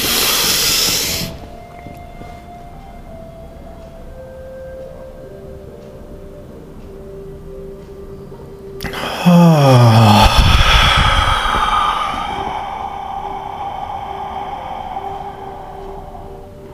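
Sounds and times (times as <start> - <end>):
deep breath in a guided breathing exercise: 0.0 - 1.5, 8.8 - 16.7
faint sustained tones: 0.0 - 16.7.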